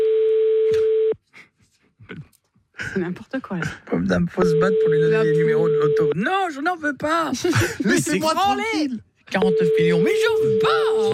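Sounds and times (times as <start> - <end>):
telephone line tone while calling a landline: 0.0 - 1.2, 4.4 - 6.1, 9.4 - 11.1
speech: 2.9 - 11.1.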